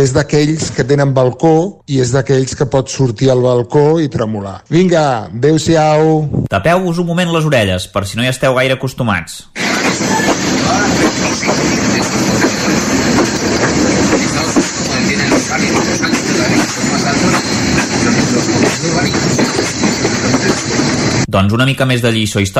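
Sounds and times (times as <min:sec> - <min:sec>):
speech: 0:00.0 - 0:09.9, 0:10.7 - 0:14.6, 0:21.3 - 0:22.5
train wheels clacking over rail joints: 0:09.6 - 0:21.3.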